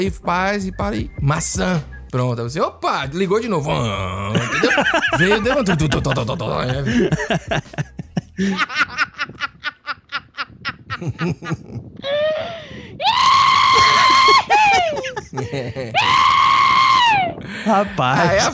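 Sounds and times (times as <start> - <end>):
speech: 0.0 - 9.1, 11.0 - 12.6, 14.9 - 16.4, 17.6 - 18.5
woman laughing in hearty bursts: 4.4 - 12.4, 13.8 - 16.2
woman screaming shrilly: 13.0 - 15.2, 16.0 - 17.4.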